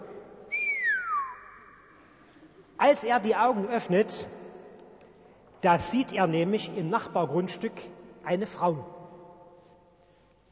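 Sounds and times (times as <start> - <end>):
person giving an appreciative whistle gliding downward: 0.5 - 1.7
speech: 2.8 - 4.4, 5.6 - 9.0.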